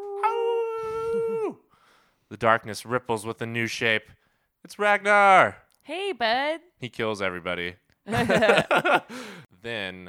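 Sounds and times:
loud terrible howl: 0.0 - 1.6
speech: 2.3 - 10.0
laughter: 8.1 - 9.2.

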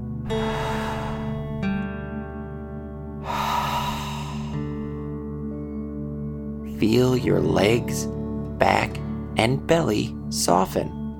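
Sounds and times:
deep breath in and exhale out through the mouth: 0.3 - 1.9, 3.1 - 5.5
sustained humming musical drone: 0.3 - 5.8
speech: 6.8 - 10.9.

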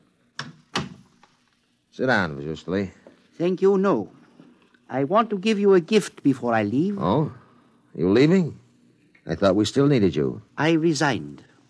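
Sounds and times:
door swinging shut: 0.4 - 1.2
speech: 2.0 - 4.2, 4.9 - 8.6, 9.3 - 11.5.

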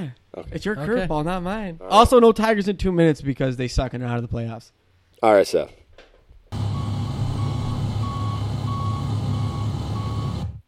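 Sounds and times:
speech: 0.0 - 5.8
truck engine low rumble: 6.6 - 10.5
truck reversing beeps: 6.6 - 10.6.

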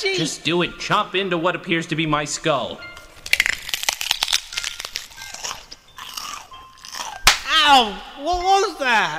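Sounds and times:
speech: 0.0 - 2.9, 7.7 - 9.1
person biting and chewing into something crunchy: 3.2 - 7.5.

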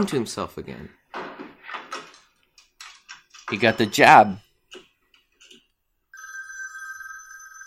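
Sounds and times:
speech: 0.0 - 1.0, 3.5 - 4.8
old-fashioned telephone bell ringing: 6.1 - 7.6.

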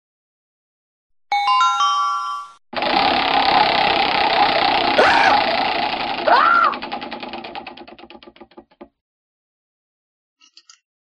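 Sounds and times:
chime notes: 1.3 - 2.6
prize wheel spinning with rapid ticks: 2.8 - 8.4.

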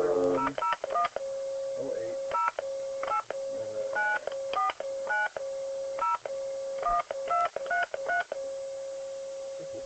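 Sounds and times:
steady telephone tone: 0.0 - 9.8
touch-tone keypad beeps dialing an international phone number: 0.3 - 1.2, 2.3 - 5.4, 6.0 - 8.4.

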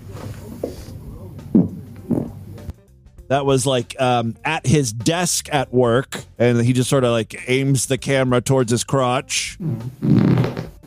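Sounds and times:
low rumbling fart: 1.4 - 2.6, 9.6 - 10.8
speech: 3.3 - 10.7.

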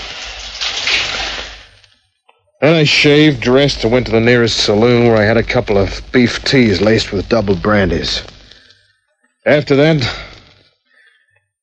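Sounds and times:
shower water running as a dense hissing spray: 0.0 - 1.8
speech: 2.6 - 8.3, 9.5 - 10.3.

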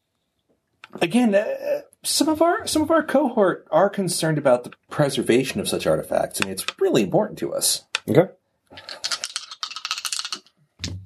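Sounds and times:
speech: 0.9 - 9.1
large dice rolling on a table: 8.8 - 11.0.

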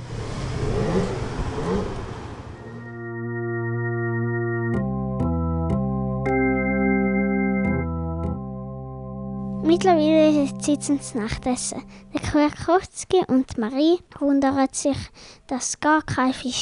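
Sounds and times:
car engine starting with a rough noisy burst: 0.0 - 3.2
car engine steady humming drone driving off from the coast near Heraklion: 0.0 - 12.2
speech: 9.7 - 16.6.

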